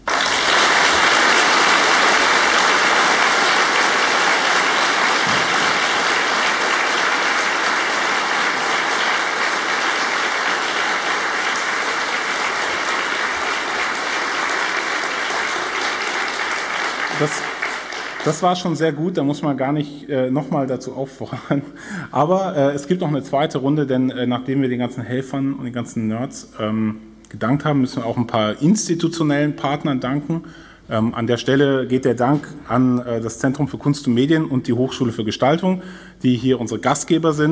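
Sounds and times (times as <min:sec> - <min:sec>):
large crowd applauding: 0:00.0 - 0:18.8
speech: 0:18.2 - 0:37.5.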